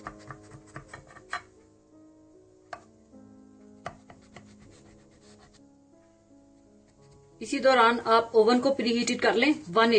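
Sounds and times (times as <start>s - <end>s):
knife cutting food into square pieces on a board: 0.0s - 1.5s, 3.8s - 5.0s
speech: 7.4s - 9.9s.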